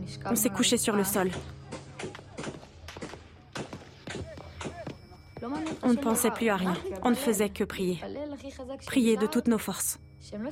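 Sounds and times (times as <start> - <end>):
speech: 0.1 - 2.1, 5.4 - 10.5
gunshots: 1.3 - 5.0.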